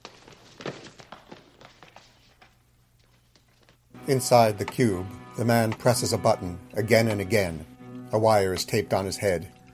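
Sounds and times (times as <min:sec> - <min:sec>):
hurried footsteps of people rushing across a hard floor: 0:00.0 - 0:03.8
speech: 0:04.1 - 0:09.6.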